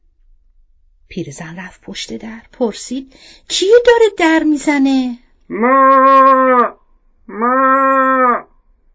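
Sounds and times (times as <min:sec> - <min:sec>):
speech: 0:01.2 - 0:07.8
person imitating a cow mooing: 0:05.5 - 0:08.5.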